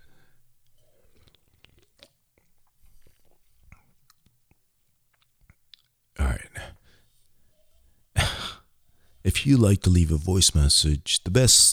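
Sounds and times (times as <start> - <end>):
wet mouth clicks from sipping a drink: 0.6 - 6.0
speech: 9.3 - 11.7.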